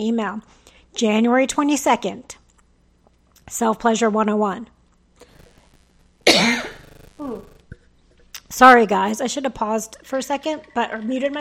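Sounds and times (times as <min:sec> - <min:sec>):
speech: 0:00.0 - 0:02.4, 0:03.5 - 0:04.8, 0:06.3 - 0:07.5, 0:08.5 - 0:11.3
single harsh loud cough: 0:06.3 - 0:06.8.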